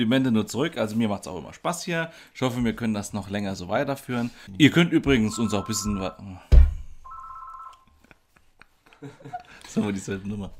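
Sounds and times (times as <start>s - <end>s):
speech: 0.0s - 6.6s, 9.0s - 10.5s
telephone ringing with a steady electronic tone: 5.1s - 6.2s, 7.0s - 7.8s
loud thump: 6.5s - 7.0s
laughter: 8.0s - 10.0s.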